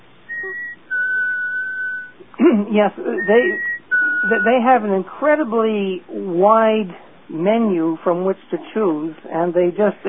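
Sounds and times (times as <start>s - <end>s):
sustained clear whistled tones: 0.3s - 2.2s, 3.1s - 4.6s
speech: 2.5s - 10.0s.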